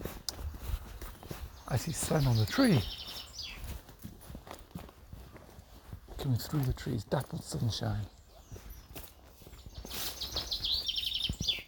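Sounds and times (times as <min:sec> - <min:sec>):
birds singing among sycamore trees and green undergrowth: 0:00.7 - 0:03.9, 0:06.2 - 0:11.6
speech: 0:01.7 - 0:03.0, 0:06.3 - 0:08.2.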